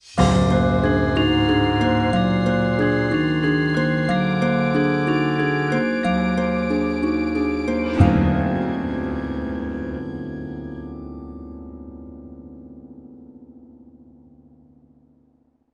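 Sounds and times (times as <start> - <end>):
sitar: 0.2 - 12.1.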